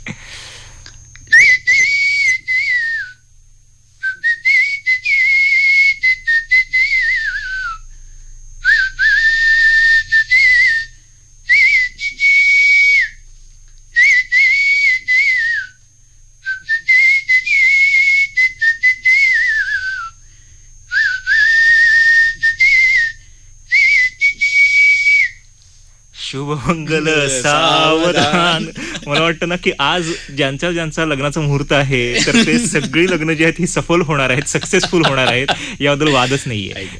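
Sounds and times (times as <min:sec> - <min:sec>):
person whistling a traditional wedding verse tune: 0:01.3 - 0:03.2, 0:04.0 - 0:07.8, 0:08.7 - 0:10.9, 0:11.5 - 0:13.2, 0:14.0 - 0:15.8, 0:16.5 - 0:20.2, 0:20.9 - 0:25.4
speech: 0:26.4 - 0:36.9
laughter: 0:26.6 - 0:30.4, 0:32.1 - 0:36.9.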